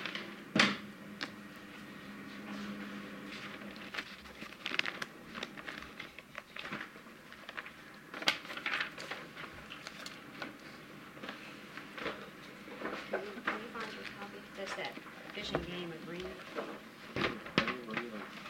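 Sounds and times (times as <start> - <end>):
papers being shuffled and rustled during a committee hearing: 1.1 - 18.4.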